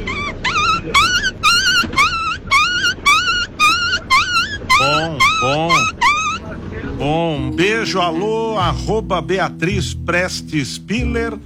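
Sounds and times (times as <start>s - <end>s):
person's voice imitating a dog yelping in pain: 0.0s - 6.4s
speech: 7.8s - 11.4s.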